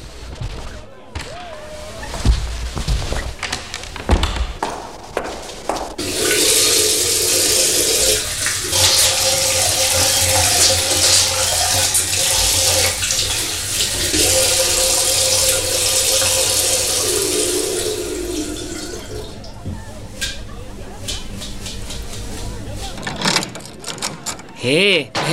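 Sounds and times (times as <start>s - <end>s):
voices: 0.0s - 25.3s
water running from a tap in a bathroom during hand washing: 6.0s - 19.5s.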